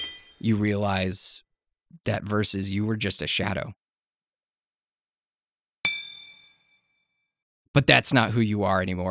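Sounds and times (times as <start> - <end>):
hammer striking metal blade at forge: 0.0 - 0.4, 5.9 - 6.8
speech: 0.4 - 3.8, 7.7 - 9.0.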